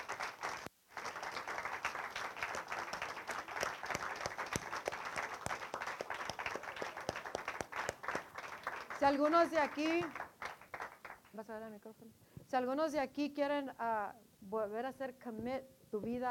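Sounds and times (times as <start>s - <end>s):
church audience applauding: 0.0s - 11.3s
speech: 9.0s - 10.2s, 11.4s - 16.2s.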